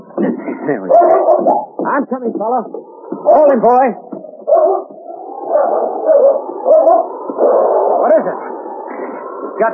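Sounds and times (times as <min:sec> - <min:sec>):
speech: 0:00.7 - 0:04.8, 0:05.6 - 0:08.6, 0:09.6 - 0:09.7
dog barking and howling: 0:00.9 - 0:01.8, 0:03.2 - 0:03.6, 0:04.3 - 0:08.8.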